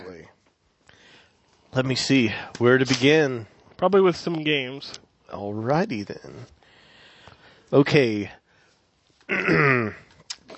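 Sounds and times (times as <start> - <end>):
speech: 1.8 - 6.6, 7.7 - 8.4, 9.3 - 10.0
person clearing throat: 9.3 - 10.1.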